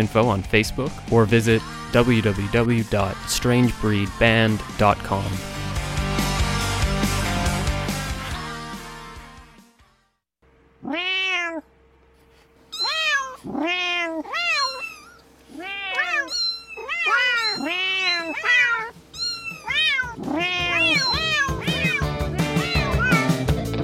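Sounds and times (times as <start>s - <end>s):
speech: 0.0s - 5.6s
music: 0.0s - 10.2s, 20.4s - 23.8s
cat meowing: 10.8s - 11.7s, 12.7s - 23.5s.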